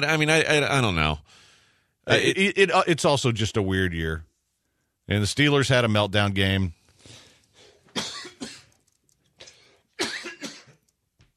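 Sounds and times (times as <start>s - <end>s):
speech: 0.0s - 1.4s, 2.1s - 4.3s, 5.1s - 6.8s
harsh hacking coughs: 7.6s - 8.8s, 10.0s - 10.8s.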